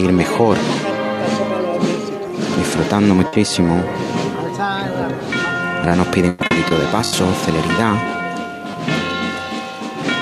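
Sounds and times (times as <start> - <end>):
speech: 0.0 - 0.9, 2.6 - 8.2
church bells ringing: 0.0 - 10.2.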